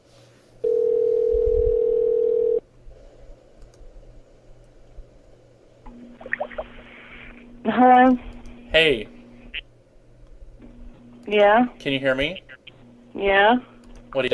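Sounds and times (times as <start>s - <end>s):
outgoing telephone call electronic ring tone: 0.6s - 2.6s
faint clicks on the telephone line: 3.6s - 3.8s, 13.8s - 14.1s
speech: 7.7s - 9.1s, 11.3s - 12.4s, 13.2s - 14.3s.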